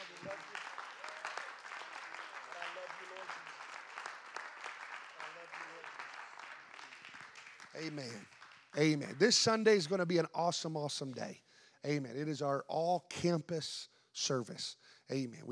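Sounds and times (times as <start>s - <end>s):
church audience applauding in a large room: 0.0s - 9.6s
speech: 7.8s - 15.4s.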